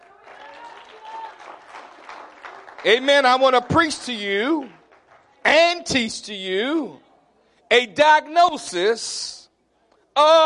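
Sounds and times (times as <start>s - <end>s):
seated audience clapping hands: 0.0s - 5.4s
speech: 2.8s - 4.8s, 5.4s - 7.0s, 7.7s - 9.4s, 10.2s - 10.4s.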